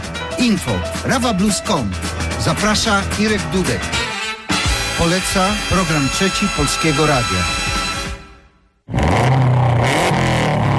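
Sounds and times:
speech: 0.4 - 4.1, 5.0 - 7.6
280-horsepower rally car engine revving hard: 8.9 - 10.7.

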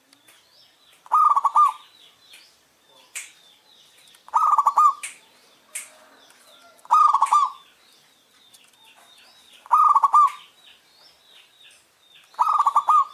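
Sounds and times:
faint chirps and twitters from other birds: 0.0 - 13.1
zebra dove singing short rapid trilled coos: 1.1 - 1.9, 4.3 - 5.0, 6.6 - 7.6, 9.6 - 10.4, 12.4 - 13.1.

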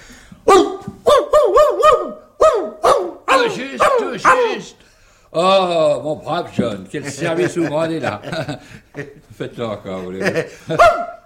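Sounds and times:
man imitating a barking dog: 0.4 - 4.8, 10.8 - 11.2
speech: 4.2 - 11.1
laughter: 6.6 - 10.9.

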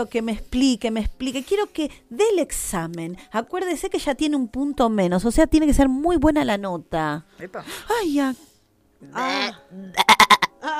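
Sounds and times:
speech: 0.0 - 10.7
voice bleating like a sheep: 9.1 - 10.7.

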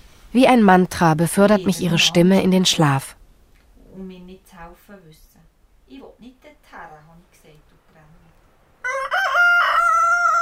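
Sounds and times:
speech: 0.3 - 3.2, 4.0 - 5.2
rooster crowing in the morning at an alp hut in Val Gronda: 8.8 - 10.4.

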